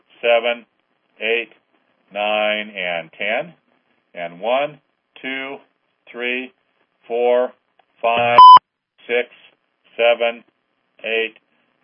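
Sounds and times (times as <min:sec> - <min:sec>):
speech: 0:00.2 - 0:03.6, 0:04.2 - 0:09.4, 0:10.0 - 0:11.8
short mid-pitched electronic beep of a caller joining a phone line: 0:08.2 - 0:08.6.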